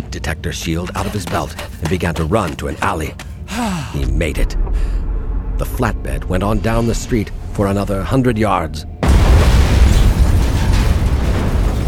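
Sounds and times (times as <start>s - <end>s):
speech: 0.2s - 5.0s, 5.6s - 8.9s
powerful explosion blowing in buildings along a street: 3.5s - 11.8s.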